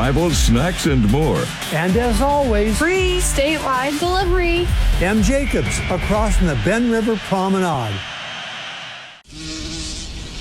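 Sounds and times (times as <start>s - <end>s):
speech: 0.1s - 8.1s
bee buzzing around: 9.2s - 10.4s.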